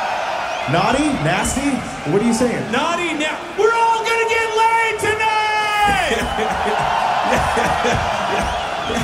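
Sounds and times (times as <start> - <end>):
large festival crowd cheering and whooping: 0.0 - 9.0
speech: 0.7 - 5.2
laughter: 5.9 - 9.0.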